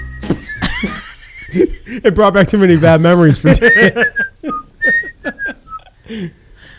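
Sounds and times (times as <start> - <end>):
bright thin whistled melody in a sitcom intro song: 0.0 - 0.6, 3.7 - 5.9
laughter: 0.4 - 6.0
speech: 0.8 - 5.0, 6.1 - 6.4.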